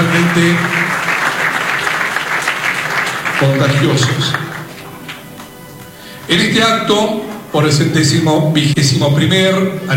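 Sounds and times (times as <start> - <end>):
applause at a town anniversary ceremony honoring local schools: 0.0 - 6.0
speech: 0.2 - 0.8, 3.4 - 4.5, 6.3 - 9.9.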